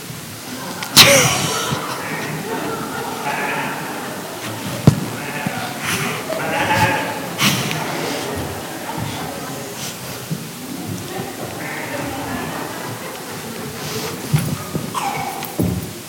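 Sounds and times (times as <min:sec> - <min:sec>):
laughter: 0:00.4 - 0:16.0
sheep bleating: 0:01.0 - 0:08.4, 0:11.4 - 0:12.2.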